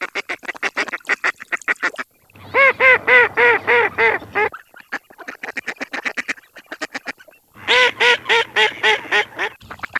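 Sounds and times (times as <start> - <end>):
germano bird calling: 2.4 - 9.9.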